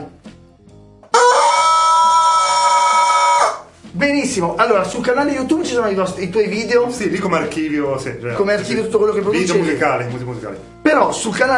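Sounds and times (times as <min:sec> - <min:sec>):
rooster crowing: 0:01.1 - 0:03.7
speech: 0:04.0 - 0:11.5.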